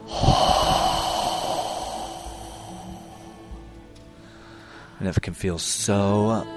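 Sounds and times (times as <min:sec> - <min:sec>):
deep exhale during a guided breathing exercise: 0:00.0 - 0:03.7
speech: 0:05.0 - 0:06.5.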